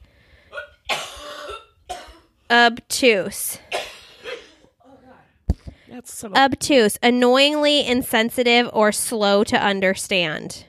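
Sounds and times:
person clearing throat: 0:00.5 - 0:02.3, 0:03.7 - 0:05.2
person coughing in short harsh bursts: 0:00.5 - 0:02.3, 0:03.7 - 0:05.2
speech: 0:02.5 - 0:03.6, 0:06.0 - 0:10.6.

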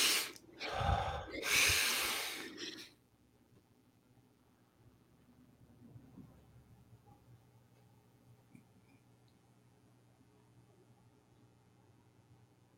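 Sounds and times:
deep breath drawn in during a guided breathing exercise: 0:00.0 - 0:02.9.

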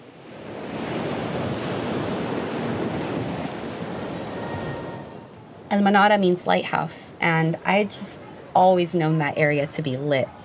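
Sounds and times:
ocean waves crashing against rocks: 0:00.0 - 0:10.4
faint wind rush: 0:00.1 - 0:05.5
speech: 0:05.7 - 0:10.4.

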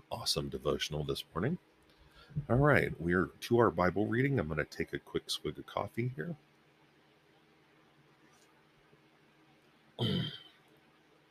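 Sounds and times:
speech: 0:00.2 - 0:01.7, 0:02.3 - 0:06.5
cough or throat clearing: 0:10.0 - 0:10.6.

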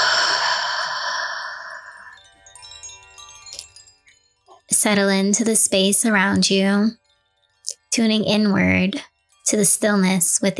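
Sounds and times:
deep breath exhaled through the mouth during a mindfulness breathing exercise: 0:00.0 - 0:02.2
faint tonal sounds: 0:00.0 - 0:10.5
speech: 0:04.8 - 0:07.0, 0:08.0 - 0:10.5.

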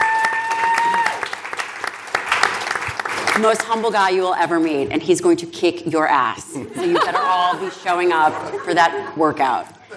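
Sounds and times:
crowd cheering: 0:00.0 - 0:03.1
crowd clapping: 0:00.0 - 0:03.8
speech: 0:03.4 - 0:09.8
laughter: 0:06.7 - 0:09.9.

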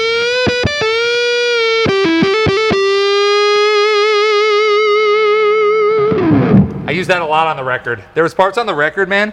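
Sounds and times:
distorted electric guitar on the bridge pickup with the tone knob rolled off: 0:00.0 - 0:07.1
speech: 0:07.0 - 0:09.3.

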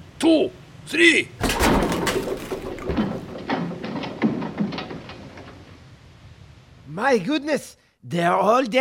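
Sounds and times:
speech: 0:00.2 - 0:01.8, 0:07.0 - 0:08.7
door being broken down: 0:01.4 - 0:05.8.

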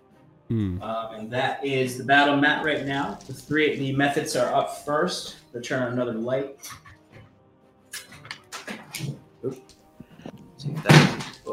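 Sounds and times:
speech: 0:00.5 - 0:06.8, 0:09.0 - 0:09.6
objects being knocked over with thuds and clattering knocks: 0:10.7 - 0:11.5.

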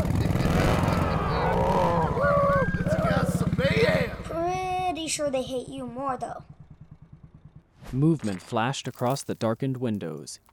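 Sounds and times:
motorcycle engine roaring outside a church: 0:00.0 - 0:04.4, 0:05.9 - 0:07.8
speech: 0:05.2 - 0:06.5, 0:07.9 - 0:10.5.

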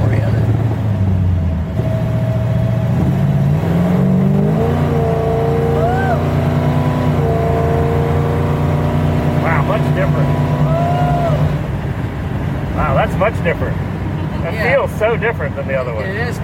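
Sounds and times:
four-speed car engine accelerating through gear shifts: 0:00.0 - 0:16.4
speech: 0:15.1 - 0:16.4.

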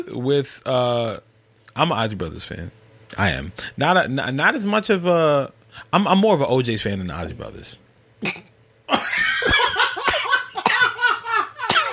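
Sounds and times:
speech: 0:00.0 - 0:09.2
person coughing: 0:08.2 - 0:09.1, 0:10.0 - 0:11.0, 0:11.6 - 0:11.9.

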